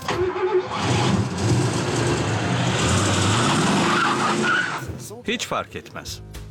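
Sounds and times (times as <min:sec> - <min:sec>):
car tyres skidding: 0:00.2 - 0:05.1
car engine roaring while driven fast: 0:00.3 - 0:04.9
speech: 0:05.3 - 0:06.3.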